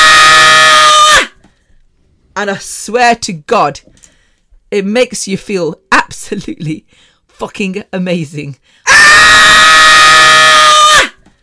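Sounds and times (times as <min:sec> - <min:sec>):
loud full-force strained human scream: 0:00.0 - 0:01.4, 0:08.9 - 0:11.2
speech: 0:02.4 - 0:03.9, 0:04.7 - 0:10.4.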